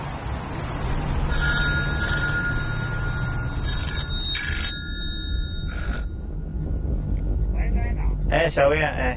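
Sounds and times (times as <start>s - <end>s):
steady low rumble: 0.2s - 9.1s
telephone ringing with a warbling electronic tone: 1.3s - 6.1s
speech: 8.5s - 9.1s.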